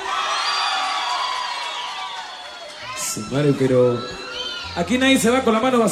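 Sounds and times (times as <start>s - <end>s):
audience applause: 0.0s - 4.4s
audience whoops and shouts: 0.0s - 5.9s
speech: 3.2s - 4.2s, 4.8s - 5.9s.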